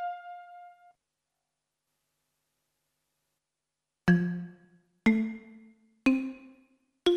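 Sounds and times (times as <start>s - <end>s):
digital synthesizer mixed form: 4.1s - 7.1s.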